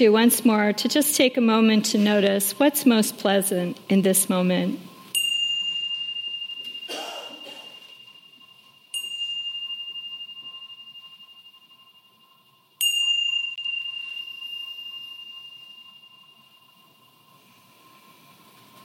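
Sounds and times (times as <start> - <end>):
speech: 0.0 - 4.9
meditation bell ringing: 4.9 - 18.2.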